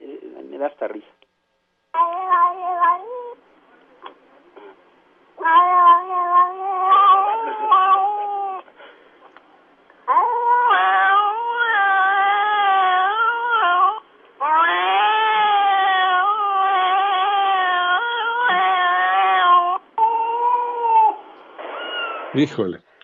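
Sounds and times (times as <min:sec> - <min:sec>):
speech: 0:00.6 - 0:01.2, 0:22.4 - 0:22.8
cat chattering vocalizations turning into meows: 0:02.0 - 0:03.4, 0:05.4 - 0:08.6, 0:10.0 - 0:22.3.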